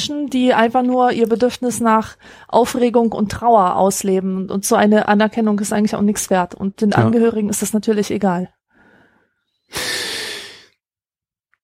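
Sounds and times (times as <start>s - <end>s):
speech: 0.0s - 8.6s, 9.7s - 10.0s
asthmatic wheezing breath: 8.7s - 10.8s.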